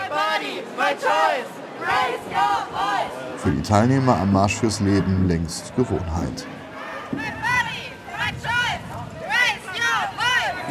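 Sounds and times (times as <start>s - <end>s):
crowd of counter-protesters yelling rhythmic chants at a march in Berlin: 0.0s - 10.6s
speech: 0.9s - 7.4s.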